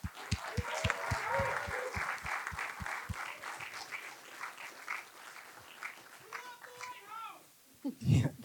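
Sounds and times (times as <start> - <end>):
rhythmic stomping thumps: 0.0 - 3.7
crowd applause: 0.0 - 7.4
whoops and whistles: 0.2 - 2.2.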